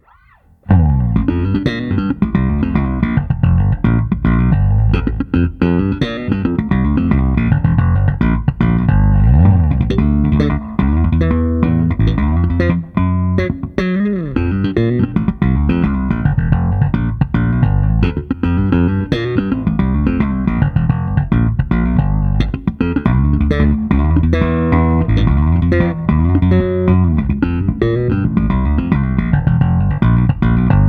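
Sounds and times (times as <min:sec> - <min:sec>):
custom jazz bass guitar slap tone: 0:00.0 - 0:30.8.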